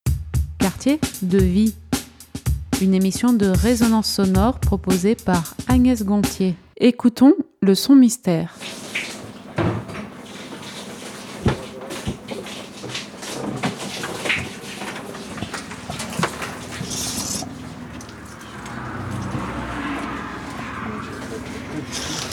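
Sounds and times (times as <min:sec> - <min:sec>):
speech: 0:00.6 - 0:01.8, 0:02.8 - 0:08.8
water running from a shower in a street shower truck: 0:08.5 - 0:22.3
sharp knocks and clatters: 0:09.0 - 0:20.3
passing cars: 0:14.8 - 0:22.3.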